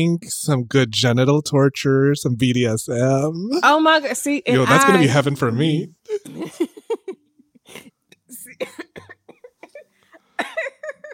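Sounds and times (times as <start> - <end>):
speech: 0.0 - 6.7
laughter: 4.6 - 5.3, 10.6 - 11.1
person in a coughing fit: 7.7 - 11.1.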